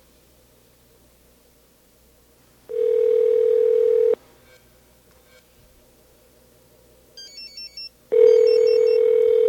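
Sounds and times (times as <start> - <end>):
telephone dial tone: 2.7 - 4.2, 8.2 - 9.4
telephone keypad beeps dialing a Sprint number: 7.2 - 9.0.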